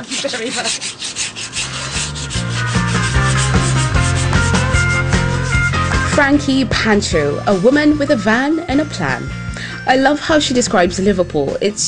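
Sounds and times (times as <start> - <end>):
speech: 0.0 - 1.2, 6.2 - 11.8
sanding decorator's cork flush to wood: 0.0 - 6.6.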